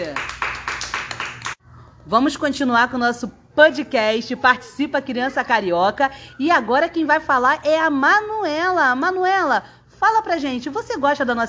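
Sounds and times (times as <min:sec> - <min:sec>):
small group of children clapping: 0:00.0 - 0:01.6
speech: 0:02.1 - 0:11.4.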